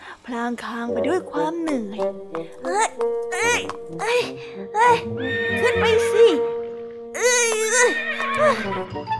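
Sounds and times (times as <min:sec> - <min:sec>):
speech: 0:00.3 - 0:06.5, 0:07.2 - 0:09.1
horse whinnying: 0:05.0 - 0:06.4, 0:07.2 - 0:09.0.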